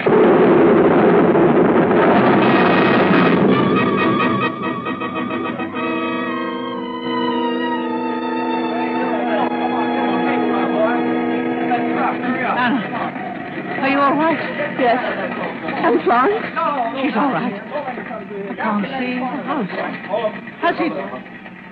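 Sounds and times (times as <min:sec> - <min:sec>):
bomb falling and exploding: 0:00.0 - 0:16.6
steady sustained tones: 0:00.0 - 0:21.7
speech: 0:18.7 - 0:21.7.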